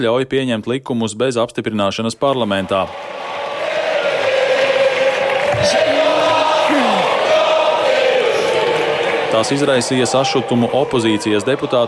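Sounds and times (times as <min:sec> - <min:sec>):
speech: 0:00.0 - 0:03.3, 0:05.6 - 0:06.0, 0:09.4 - 0:11.8
packed hall of parliament deputies booing: 0:02.6 - 0:11.8
parliament deputies singing the national anthem: 0:03.0 - 0:09.9.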